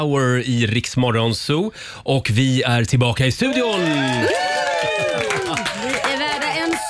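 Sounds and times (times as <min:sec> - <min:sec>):
speech: 0:00.0 - 0:05.2
crowd clapping: 0:03.4 - 0:06.8
people cheering: 0:03.4 - 0:06.8.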